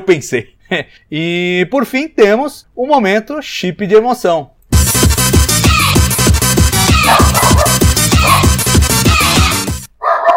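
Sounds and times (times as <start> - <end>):
speech: 0.0 - 4.6
loud driving music with a steady beat: 4.8 - 9.9
dog barking: 7.0 - 8.5, 10.0 - 10.3.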